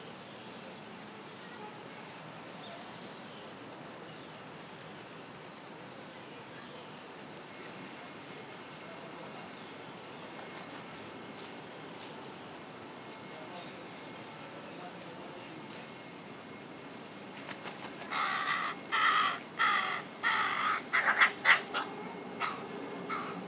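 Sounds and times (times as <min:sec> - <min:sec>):
carrion crow Corvus corone cawing: 0:18.0 - 0:23.4.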